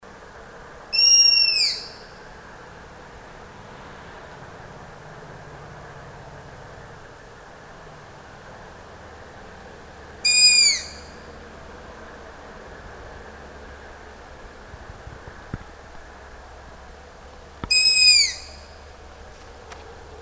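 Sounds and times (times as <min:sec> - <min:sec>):
Striped owl Asio clamator calls: 0:00.9 - 0:02.2, 0:10.2 - 0:11.3, 0:17.6 - 0:18.8.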